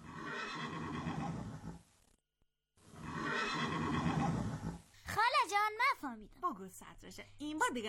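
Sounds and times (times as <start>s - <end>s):
horse neighing: 0.0s - 1.8s, 2.9s - 4.9s
speech: 5.9s - 7.8s.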